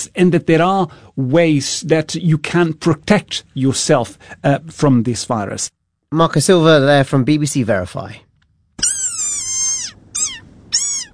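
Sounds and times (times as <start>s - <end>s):
speech: 0.0s - 8.3s
desert rain frog squealing with high strained squeaks in coastal southern Africa: 8.8s - 11.1s.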